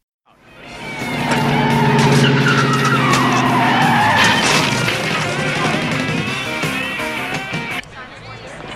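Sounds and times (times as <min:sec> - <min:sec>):
sports car tires squealing in a long skid: 0:00.4 - 0:07.7
sports car engine revving: 0:00.4 - 0:07.8
sports car smashing into wooden fruit crates: 0:01.2 - 0:06.2.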